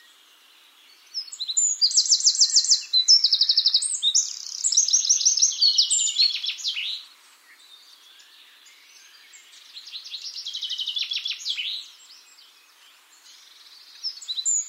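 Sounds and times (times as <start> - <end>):
Eurasian wren song, Troglodytes troglodytes, high trills and buzzy rattles: 0.0 - 14.6.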